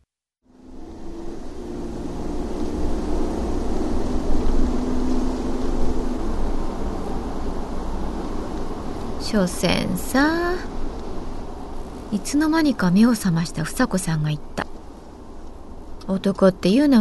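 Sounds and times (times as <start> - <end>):
car engine accelerating: 0.4 - 8.5
car road roar: 0.4 - 16.9
faint hum: 0.5 - 16.9
speech: 9.3 - 10.7, 12.1 - 14.6, 16.1 - 16.9.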